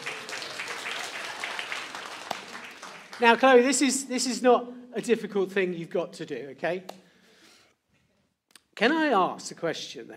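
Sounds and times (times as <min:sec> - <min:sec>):
audience applause: 0:00.0 - 0:03.7
speech: 0:03.2 - 0:07.0, 0:08.8 - 0:10.1.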